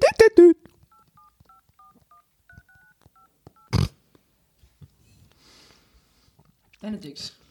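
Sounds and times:
phone keypad dialing tones: 0:00.9 - 0:03.8
speech: 0:07.0 - 0:07.4.

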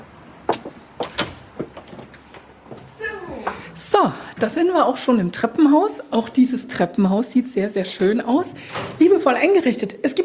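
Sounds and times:
dark green villa front door creaking open: 0:00.5 - 0:02.1
latch and handle of a villa front door clacking: 0:00.5 - 0:02.1
speech: 0:04.0 - 0:10.2.

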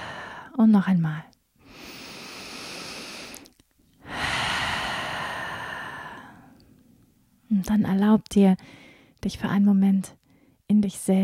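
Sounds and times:
speech: 0:00.6 - 0:01.3, 0:07.6 - 0:11.2
slow inhale through the nose during a relaxation exercise: 0:01.6 - 0:06.6.

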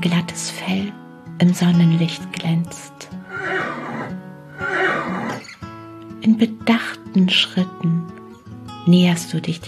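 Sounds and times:
speech: 0:00.0 - 0:03.8, 0:06.2 - 0:08.2, 0:08.8 - 0:09.6
horse neighing softly at a stable: 0:03.3 - 0:05.6.

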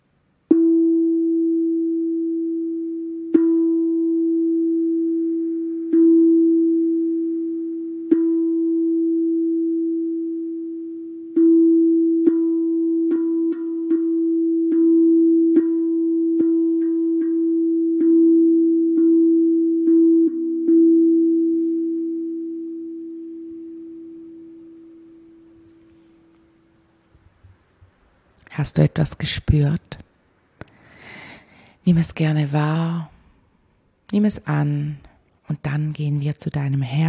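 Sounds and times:
pure musical tone E struck for meditation: 0:00.4 - 0:27.1
speech: 0:28.6 - 0:30.0, 0:31.9 - 0:33.1, 0:34.1 - 0:35.0, 0:35.6 - 0:37.0.

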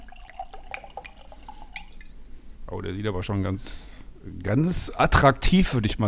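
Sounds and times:
rosé wine pouring into a glass: 0:00.0 - 0:02.2
speech: 0:02.7 - 0:06.0.

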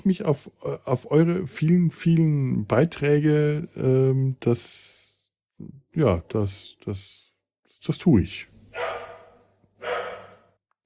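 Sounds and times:
speech: 0:00.0 - 0:07.2, 0:07.8 - 0:08.5
neighbour's dog barking muffled in a hallway: 0:08.7 - 0:10.5.

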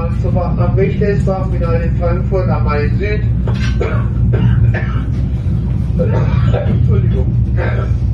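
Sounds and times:
steady low hum: 0:00.0 - 0:08.1
speech: 0:00.4 - 0:05.0, 0:06.0 - 0:08.1
person having a coughing fit: 0:03.6 - 0:05.2, 0:06.0 - 0:08.1.

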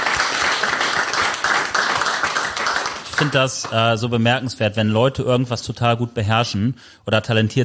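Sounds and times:
crowd applauding: 0:00.0 - 0:03.9
speech: 0:03.2 - 0:07.6.

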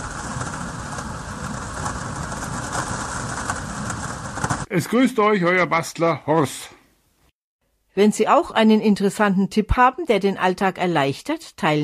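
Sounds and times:
heavy rain shower pelting plexiglass covers heard from inside a dry cellar: 0:00.0 - 0:04.7
speech: 0:04.7 - 0:06.8, 0:08.0 - 0:11.8.

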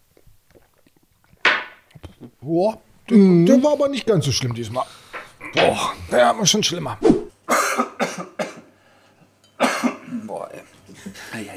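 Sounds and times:
speech: 0:02.2 - 0:07.2
person coughing after taking a drink: 0:07.5 - 0:08.7, 0:09.6 - 0:10.3.

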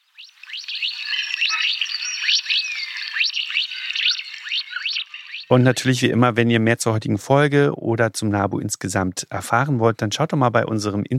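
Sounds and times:
Mandarin duck peeping: 0:00.0 - 0:06.0
speech: 0:05.5 - 0:11.1.

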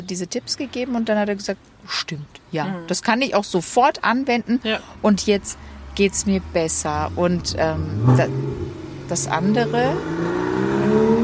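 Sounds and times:
speech: 0:00.0 - 0:10.4
Porsche car revving as it drives past: 0:04.8 - 0:11.2.

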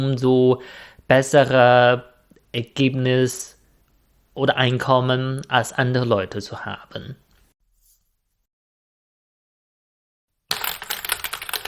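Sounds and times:
speech: 0:00.0 - 0:03.6, 0:04.4 - 0:07.2
rapid typing on a mechanical keyboard: 0:10.5 - 0:11.6.

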